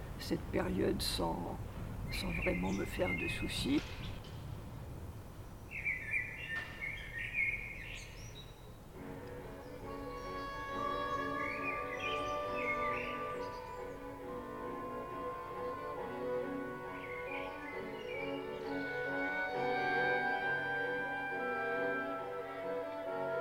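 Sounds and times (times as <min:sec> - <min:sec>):
steady noise: 0:00.0 - 0:23.4
speech: 0:00.3 - 0:03.9
blackbird singing in short bright whistled phrases: 0:00.6 - 0:04.3, 0:05.2 - 0:19.8.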